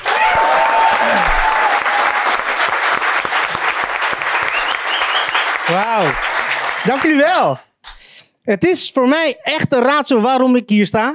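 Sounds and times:
large crowd applauding an arriving performer: 0.0s - 7.6s
whistles: 4.3s - 5.7s
speech: 5.8s - 7.7s, 8.5s - 11.1s.

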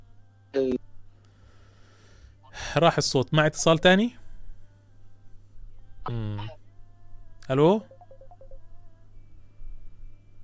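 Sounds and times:
low electrical hum: 0.0s - 10.4s
speech: 0.6s - 0.8s, 2.8s - 4.2s, 7.5s - 7.9s
telephone dialing beeps placing a call: 7.9s - 8.6s.

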